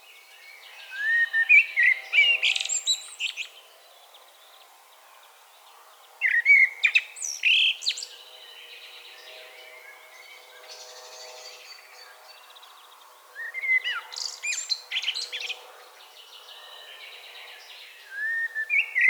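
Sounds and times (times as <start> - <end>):
common blackbird Turdus merula singing: 0.4 - 3.6, 6.2 - 8.6, 13.4 - 19.0.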